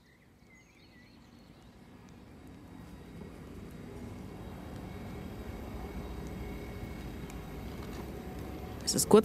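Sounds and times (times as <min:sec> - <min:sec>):
trains rolling into a railway station: 0:00.8 - 0:09.2.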